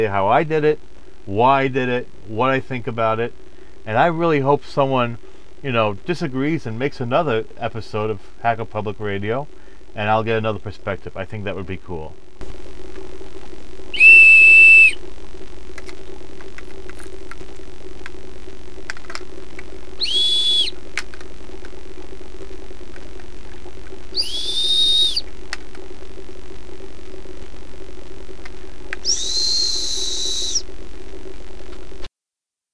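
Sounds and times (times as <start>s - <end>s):
speech: 0.0s - 12.6s
constant low hum: 0.0s - 32.0s
short high whistles as frequency demonstration: 14.0s - 15.0s, 20.0s - 20.8s, 24.2s - 25.3s, 29.0s - 30.6s.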